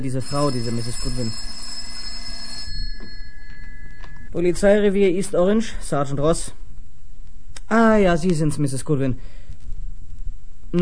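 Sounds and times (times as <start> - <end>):
speech: 0.0 - 1.6, 4.4 - 6.6, 7.7 - 9.4
telephone bell ringing at a police station: 0.0 - 4.3.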